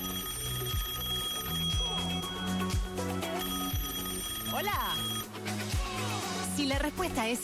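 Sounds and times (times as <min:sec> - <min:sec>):
telephone ringtone with bright electronic melody and pulsing bass line: 0:00.0 - 0:05.4
speech: 0:06.6 - 0:07.4.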